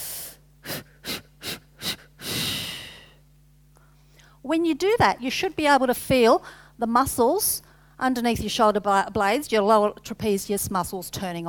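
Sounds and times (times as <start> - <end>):
person taking a deep breath in: 0.0 - 3.2, 6.4 - 6.8
short puffs of air blowing out an imagined candle: 0.0 - 3.2
speech: 4.4 - 11.4.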